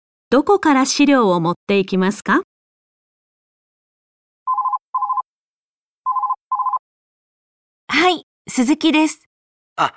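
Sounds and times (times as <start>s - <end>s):
speech: 0.3s - 2.5s, 7.9s - 9.9s
telephone ringing at a company: 4.5s - 5.2s, 6.1s - 6.8s.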